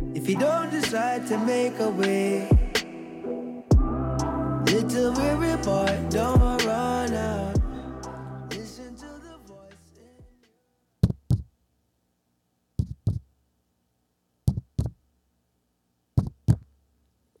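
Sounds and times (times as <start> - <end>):
melodic music: 0.0 - 9.9
speech: 0.2 - 2.6, 4.6 - 7.6
slow deep heartbeat sound effect: 2.5 - 2.8, 3.7 - 4.0, 6.4 - 6.6, 7.6 - 7.8, 11.0 - 11.5, 12.8 - 13.2, 14.5 - 15.0, 16.2 - 16.7.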